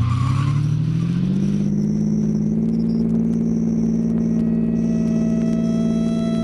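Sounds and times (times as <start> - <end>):
high squeal of skidding car tires: 0.0 - 3.7
stolen car engine roaring as it speeds away in a police chase: 0.0 - 6.4.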